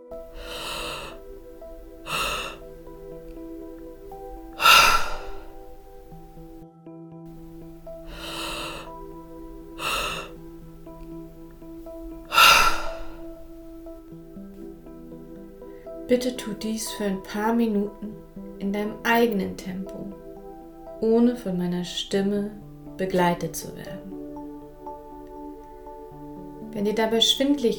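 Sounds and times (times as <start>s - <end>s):
slow deep inhale into the lower belly: 0.0s - 6.6s, 7.3s - 14.2s
soft sustained musical drone: 0.0s - 27.7s
relaxed effortless exhale through the open mouth: 0.1s - 6.6s, 7.3s - 14.1s
speech: 16.1s - 20.2s, 21.0s - 24.1s, 26.8s - 27.7s.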